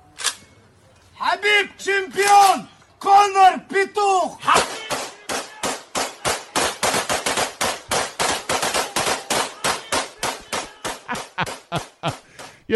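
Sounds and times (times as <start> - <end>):
speech: 1.4 - 4.8, 11.7 - 12.7
AK-47 automatic rifle fire into the air outdoors at night: 4.6 - 11.3
laughter: 10.7 - 12.4.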